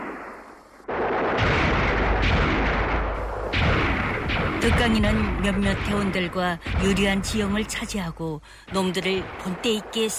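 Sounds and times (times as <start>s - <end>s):
gunfire barrage: 0.0s - 10.1s
speech: 4.6s - 10.1s.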